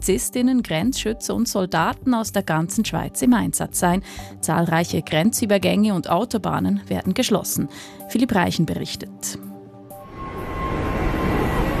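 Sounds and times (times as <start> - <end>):
speech: 0.0 - 9.5
jet aircraft taking off and landing at an airport: 9.9 - 11.7.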